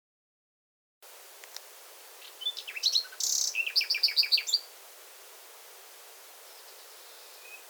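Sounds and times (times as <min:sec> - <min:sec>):
common nightingale Luscinia megarhynchos singing: 0:01.6 - 0:04.8, 0:06.2 - 0:07.6.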